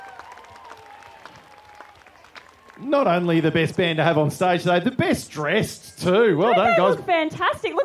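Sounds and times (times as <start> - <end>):
audience applauding after a band performance: 0.0 - 4.2
speech: 2.8 - 7.8.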